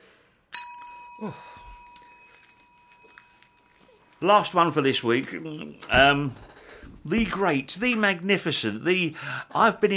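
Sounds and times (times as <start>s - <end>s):
single bright metallic bell strike: 0.5s - 3.9s
speech: 1.2s - 1.6s, 4.2s - 9.9s.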